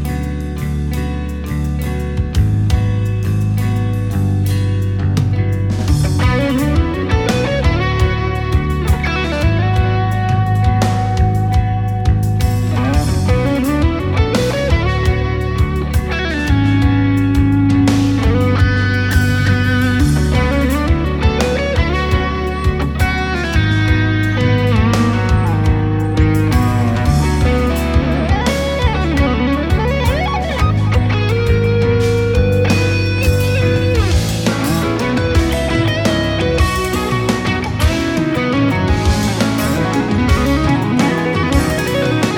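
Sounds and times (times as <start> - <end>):
heavily distorted electric guitar riff through amp simulator plugin: 0.0 - 42.3.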